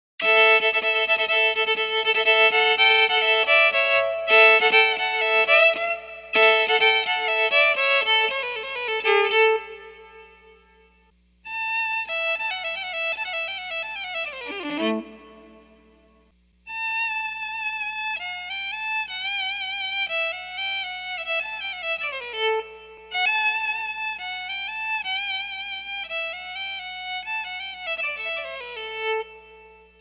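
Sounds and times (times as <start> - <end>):
electric violin: 0.2 - 29.9.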